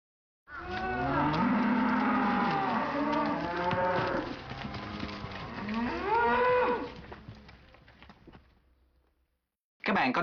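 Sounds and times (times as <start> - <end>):
cow mooing: 0.5 - 7.0.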